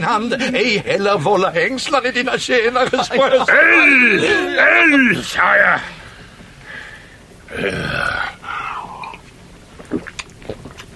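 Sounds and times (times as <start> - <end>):
speech: 0.0 - 6.0, 7.5 - 8.2
laughter: 2.6 - 5.1
person gulping ale: 7.5 - 10.9
small clicking mouth sounds: 7.5 - 10.9.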